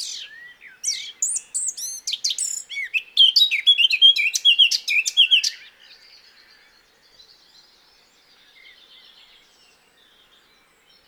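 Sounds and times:
Eurasian blackcap Sylvia atricapilla singing a fluty warble: 0.0 - 5.6.

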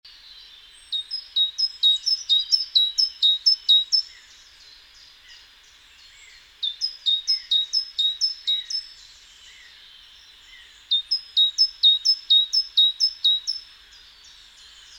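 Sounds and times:
light background noise: 0.0 - 14.9
great tit Parus major uttering rapid high two-note units: 0.9 - 4.1, 6.6 - 8.9, 10.9 - 13.6.

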